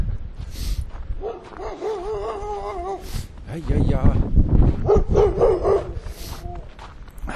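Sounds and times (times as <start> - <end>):
dog letting out short barks: 1.2 - 3.0, 4.8 - 6.0
speech: 3.0 - 5.5.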